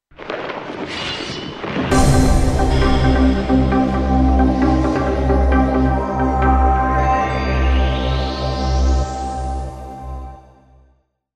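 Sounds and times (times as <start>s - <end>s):
teleshopping television jingle: 2.0s - 10.1s.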